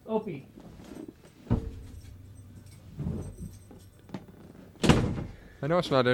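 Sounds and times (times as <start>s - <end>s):
shuffling noises: 0.5s - 4.8s
door in a house shut with a sharp thud: 1.5s - 2.0s, 4.8s - 5.4s
soft knocks: 1.5s - 2.1s
speech: 5.6s - 6.1s.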